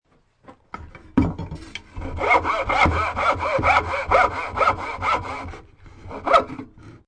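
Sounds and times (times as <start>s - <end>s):
handsaw sawing wood: 2.0s - 7.0s.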